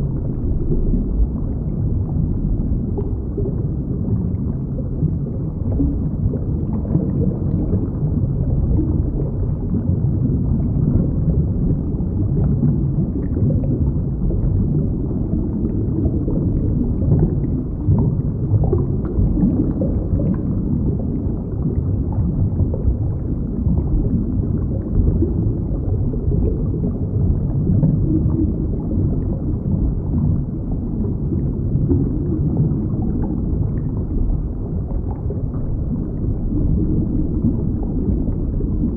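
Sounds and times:
underwater coral reef rumbling: 0.0s - 38.9s.

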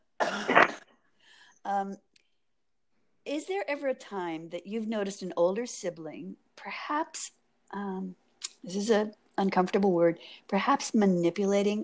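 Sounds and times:
brief voiced throat clearing: 0.2s - 0.9s
single harsh cough: 0.2s - 0.9s
speech: 1.7s - 2.1s, 3.3s - 11.8s.

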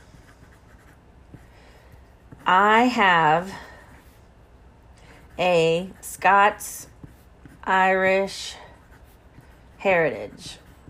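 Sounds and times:
handwriting strokes scratching: 0.0s - 1.5s, 5.2s - 10.8s
speech: 2.5s - 3.7s, 5.4s - 6.9s, 7.7s - 8.6s, 9.8s - 10.6s.

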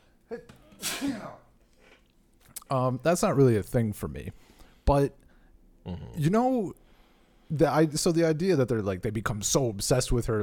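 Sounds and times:
human sneeze: 0.3s - 1.5s
speech: 2.7s - 5.2s, 5.8s - 6.8s, 7.5s - 10.4s.

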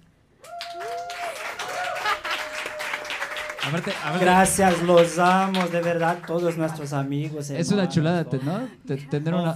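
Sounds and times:
people whooping and cheering: 0.4s - 4.8s
live studio audience applauding: 0.4s - 7.6s
speech: 3.7s - 9.5s.

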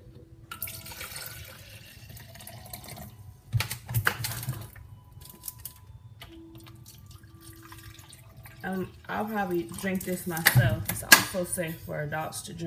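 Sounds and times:
spring water pouring into a small personal blender cup: 0.5s - 3.2s, 6.5s - 10.3s
speech: 8.7s - 12.6s.

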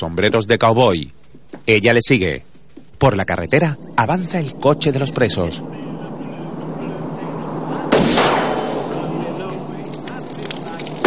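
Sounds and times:
speech: 0.0s - 5.8s
gunshots fired from a moving prisoner car at a water tank: 7.8s - 11.0s.

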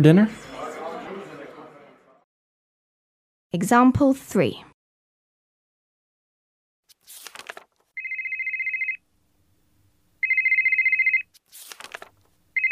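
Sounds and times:
speech: 0.0s - 0.4s, 3.5s - 4.7s
crackly rustling noises: 6.9s - 8.0s, 11.3s - 12.4s
mobile phone ringtone ringing: 8.0s - 9.0s, 10.2s - 11.3s, 12.6s - 12.7s.

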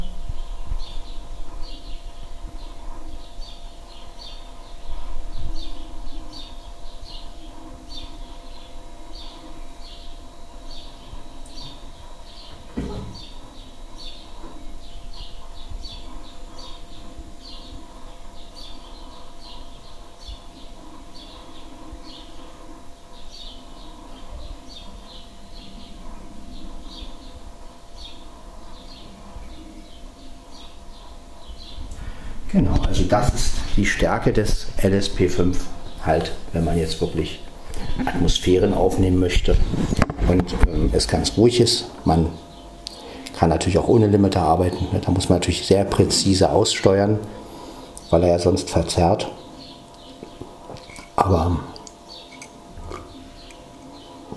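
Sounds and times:
birds chirping and singing outside: 0.0s - 54.3s
low constant hum: 0.0s - 54.3s
speech: 32.5s - 37.4s, 38.0s - 42.4s, 43.4s - 47.4s, 48.1s - 49.4s.

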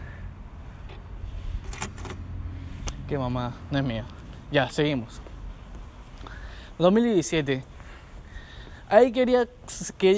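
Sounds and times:
set of keys jingling while handled: 1.6s - 2.2s
speech: 3.1s - 5.3s, 6.8s - 7.7s, 8.9s - 10.1s.

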